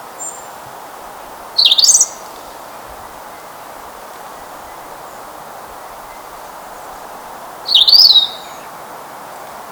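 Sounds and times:
quiet background hiss: 0:00.0 - 0:09.7
European robin Erithacus rubecula singing: 0:00.2 - 0:08.8.

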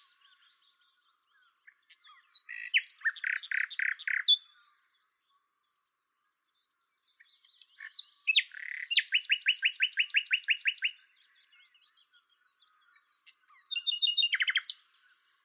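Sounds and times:
common nightingale Luscinia megarhynchos singing: 0:00.0 - 0:15.4.

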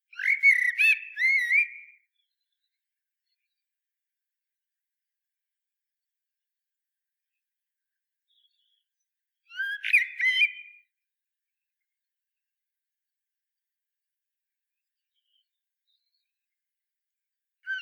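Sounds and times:
Common blackbird Turdus merula song: 0:00.1 - 0:03.7, 0:07.8 - 0:11.0, 0:15.0 - 0:16.6, 0:17.6 - 0:17.8.

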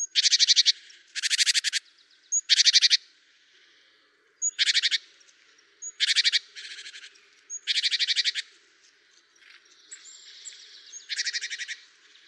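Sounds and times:
great tit Parus major harsh buzzy churring calls: 0:00.0 - 0:03.0, 0:04.4 - 0:05.0, 0:05.8 - 0:08.4, 0:11.0 - 0:11.8.

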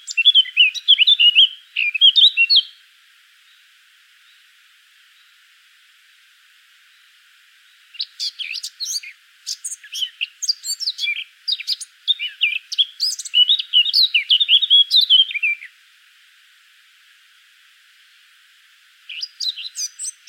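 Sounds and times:
Sylvia atricapilla Eurasian blackcap singing a varied warble: 0:00.0 - 0:05.5, 0:06.8 - 0:15.8, 0:19.0 - 0:20.2.

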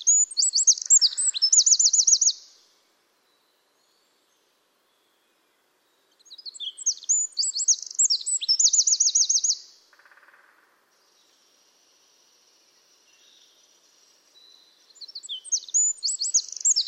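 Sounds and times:
Eurasian wren Troglodytes troglodytes song with brisk rattling trill: 0:00.0 - 0:02.5, 0:06.2 - 0:09.7, 0:13.9 - 0:16.8.

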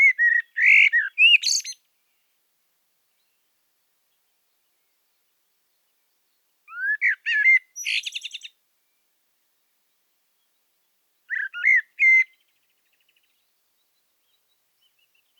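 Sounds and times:
common blackbird Turdus merula singing: 0:00.0 - 0:01.8, 0:05.8 - 0:08.6, 0:11.3 - 0:15.3.

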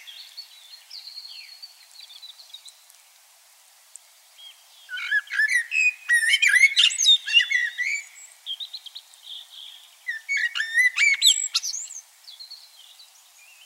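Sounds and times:
common blackbird Turdus merula whistling and warbling: 0:04.9 - 0:08.3, 0:10.1 - 0:12.0.

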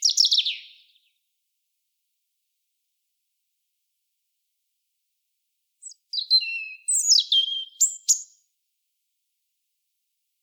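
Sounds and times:
European robin singing, Erithacus rubecula: 0:00.0 - 0:01.1, 0:05.8 - 0:08.4.

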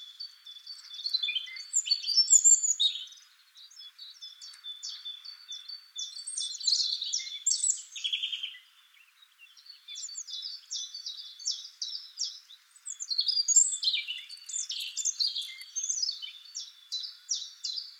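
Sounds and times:
European robin singing scratchy phrases and whistles: 0:00.0 - 0:17.9.

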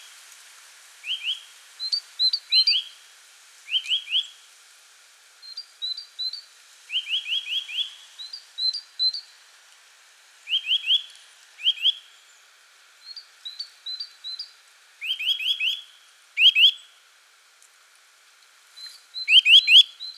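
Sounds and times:
Eurasian nuthatch Sitta europaea calls: 0:01.1 - 0:02.9, 0:05.5 - 0:09.2, 0:10.5 - 0:12.0, 0:13.1 - 0:15.9, 0:16.4 - 0:16.8, 0:18.8 - 0:20.1.

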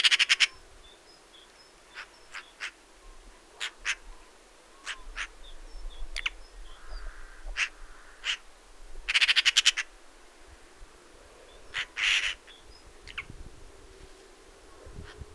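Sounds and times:
Eurasian magpie (Pica pica) rattle and rasping calls: 0:00.0 - 0:00.6, 0:01.9 - 0:02.8, 0:03.6 - 0:04.1, 0:04.8 - 0:05.4, 0:06.2 - 0:08.5, 0:09.1 - 0:09.9, 0:11.7 - 0:13.3.

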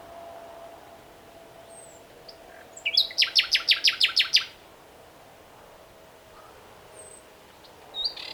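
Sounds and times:
common nightingale Luscinia megarhynchos song: 0:01.6 - 0:04.6, 0:06.9 - 0:08.3.

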